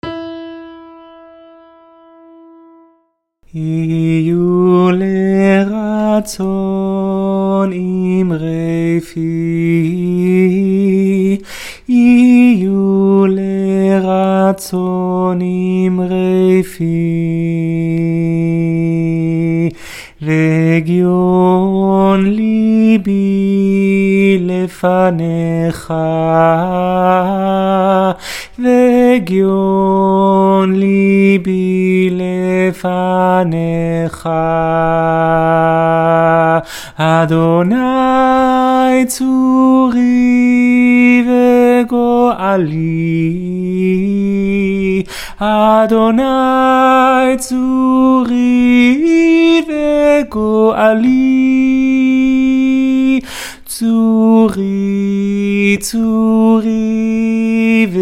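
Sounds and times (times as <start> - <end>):
tenor singing: 3.5 - 58.0.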